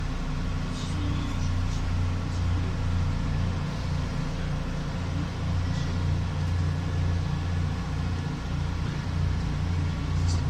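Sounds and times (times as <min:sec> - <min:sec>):
metro ambience: 0:00.0 - 0:10.4.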